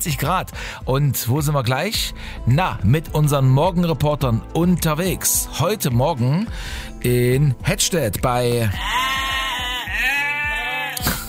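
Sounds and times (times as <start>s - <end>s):
speech: 0.0s - 9.3s
Cameroon sheep bleating at a farm in Hettstedt: 8.7s - 11.0s.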